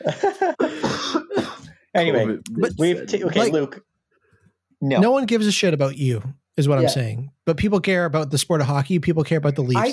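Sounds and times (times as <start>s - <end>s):
speech: 0.0s - 0.6s, 2.0s - 3.9s, 4.8s - 9.9s
laughter: 0.0s - 0.8s
person in a harsh raspy coughing fit: 0.6s - 1.8s.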